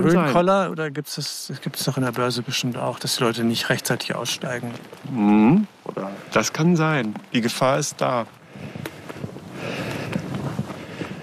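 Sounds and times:
speech: 0:00.0 - 0:08.9
footsteps crunching on rough ground on a mountain ridge: 0:01.6 - 0:05.2, 0:05.8 - 0:11.2
whistling wind on a mountain ridge: 0:08.2 - 0:11.2.

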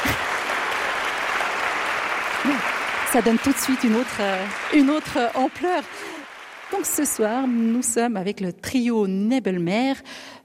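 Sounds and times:
concert audience applauding a trio: 0:00.0 - 0:08.3
speech: 0:02.4 - 0:10.4.

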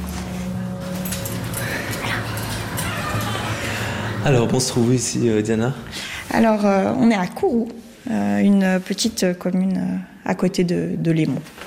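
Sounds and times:
steady noisy background: 0:00.0 - 0:08.3
thin whining cry: 0:01.9 - 0:04.2
dog whimpering: 0:02.0 - 0:03.9
speech: 0:04.2 - 0:11.6.

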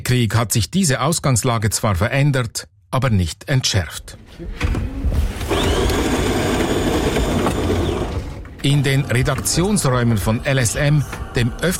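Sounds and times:
speech: 0:00.1 - 0:04.9, 0:08.6 - 0:11.7
brand-new coffee machine in a newsroom whirring and humming: 0:05.4 - 0:11.6.

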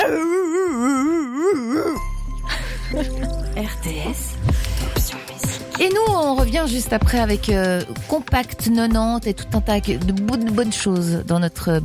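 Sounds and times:
person imitating a barking dog with a wavering yowl: 0:00.0 - 0:02.0
bright music: 0:01.8 - 0:11.8
speech: 0:05.8 - 0:11.8.

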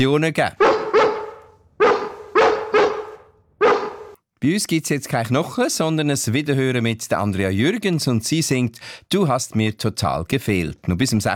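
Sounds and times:
speech: 0:00.0 - 0:00.6, 0:04.4 - 0:11.3
dog barking loud sharp woofs: 0:00.6 - 0:04.2.

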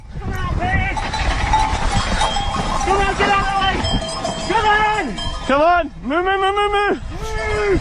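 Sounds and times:
two mountain bikers racing downhill through a herd of cows: 0:00.0 - 0:07.8
herd of cows with bells clanking on a slope: 0:00.7 - 0:06.0
loud drawn-out calls rising and falling: 0:01.0 - 0:07.8.

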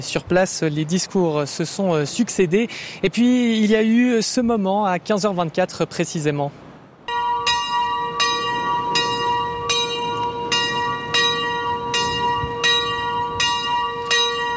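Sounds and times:
speech: 0:00.0 - 0:06.7
church bells ringing in a valley: 0:07.1 - 0:14.5.

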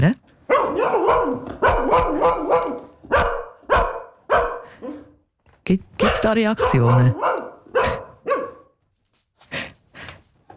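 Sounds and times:
dog barking loudly: 0:00.5 - 0:05.2, 0:06.0 - 0:08.8
speech: 0:05.7 - 0:07.3.

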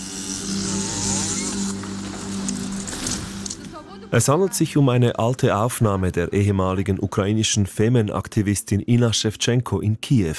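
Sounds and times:
chainsaw cutting down a large wooden cross: 0:00.0 - 0:03.6
speech: 0:04.1 - 0:10.3.

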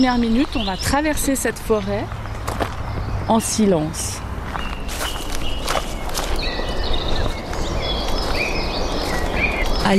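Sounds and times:
speech: 0:00.0 - 0:02.2, 0:03.3 - 0:04.2
several birds chirping and whistling in a forest: 0:00.0 - 0:09.9
footsteps crunching through dry leaves on a forest path: 0:04.5 - 0:09.9.

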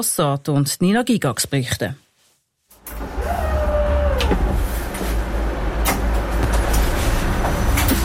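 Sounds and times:
speech: 0:00.0 - 0:02.0
partly automated narrow-gauge train running along a Swiss regional line: 0:02.9 - 0:08.0.

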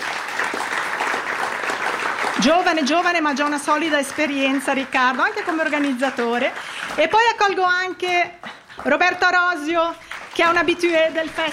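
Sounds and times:
audience applause at a music festival concert welcoming a violinist: 0:00.0 - 0:07.4, 0:09.9 - 0:11.5
speech: 0:02.4 - 0:11.5.

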